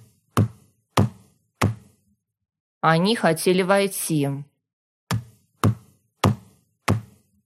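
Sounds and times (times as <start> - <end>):
fist pounding on a table: 0.3 - 2.0, 5.1 - 7.3
speech: 2.8 - 4.5.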